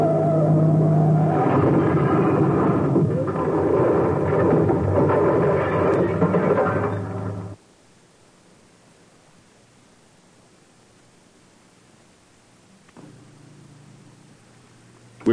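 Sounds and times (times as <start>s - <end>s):
car engine roaring while swerving at the edge of a cliff: 0.0s - 7.6s
heavy rumbling: 0.0s - 7.6s.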